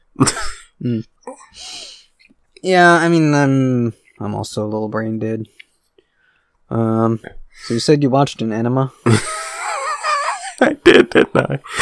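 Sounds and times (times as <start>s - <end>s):
phlegmy hacking coughs while coughing up mucus: 0.2s - 0.8s
speech: 0.2s - 1.7s, 2.6s - 5.6s, 6.7s - 9.4s, 10.6s - 11.8s
laughter: 9.1s - 11.8s.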